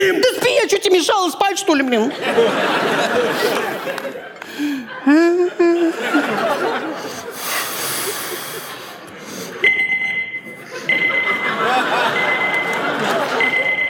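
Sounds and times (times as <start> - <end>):
overlapping chatter from people: 0.0 - 13.8
speech: 0.8 - 5.7
people laughing: 1.9 - 9.6, 10.5 - 13.8
phone reminder alarm thin steady electronic tone: 9.6 - 13.8.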